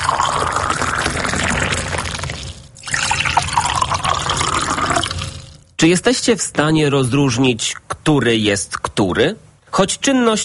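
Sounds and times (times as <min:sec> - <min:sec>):
boiling and cold water poured into mugs: 0:00.0 - 0:05.6
speech: 0:05.8 - 0:10.4.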